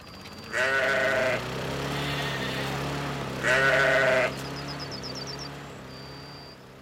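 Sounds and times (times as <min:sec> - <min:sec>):
sheep bleating: 0:00.5 - 0:04.4
faint bird chirps: 0:04.3 - 0:06.7.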